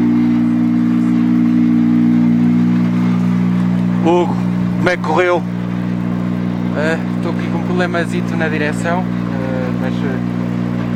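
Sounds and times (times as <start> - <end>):
rally car engine idling on arrival at Arganil: 0.0 - 10.9
speech: 4.0 - 5.6, 6.8 - 9.2, 9.8 - 10.4.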